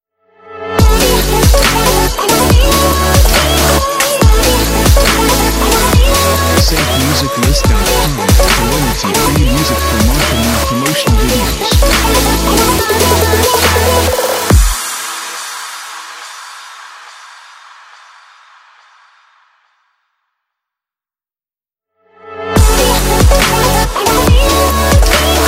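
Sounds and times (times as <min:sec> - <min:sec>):
future bass music intros: 0:00.8 - 0:15.7, 0:22.6 - 0:25.4.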